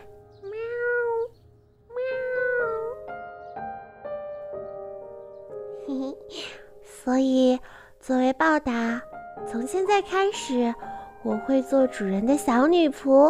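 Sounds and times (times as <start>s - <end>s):
voice imitating a kitten meowing: 0.0s - 3.1s
speech: 7.1s - 13.2s.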